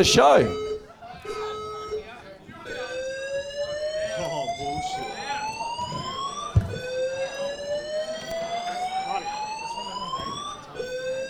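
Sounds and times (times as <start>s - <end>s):
speech: 0.0s - 0.6s
smoke alarm set off by vaping at a live show: 0.0s - 11.2s
brief knock: 6.6s - 6.8s.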